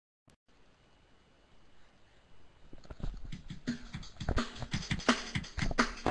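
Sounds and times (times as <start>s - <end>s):
turbo drum and bass music: 3.2s - 6.0s.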